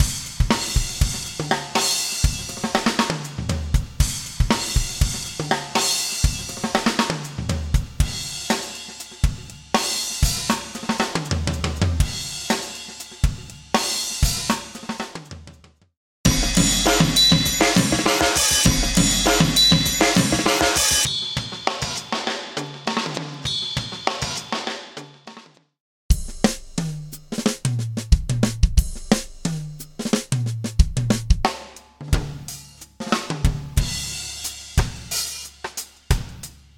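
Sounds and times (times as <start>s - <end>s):
hip hop drum fills: 0.0s - 15.5s, 16.3s - 25.4s, 26.1s - 36.7s.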